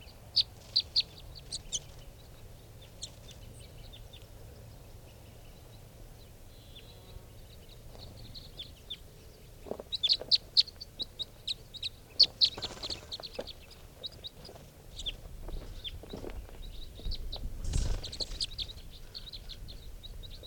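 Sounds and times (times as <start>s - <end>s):
faint steady hum: 0.0s - 20.4s
wild birds calling and chirping outdoors: 0.0s - 20.4s.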